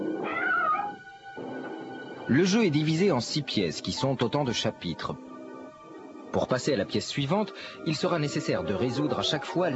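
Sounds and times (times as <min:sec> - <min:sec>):
cat meowing in a drawn-out rising and falling cry: 0:00.2 - 0:01.0
speech: 0:02.3 - 0:05.3, 0:06.3 - 0:09.7.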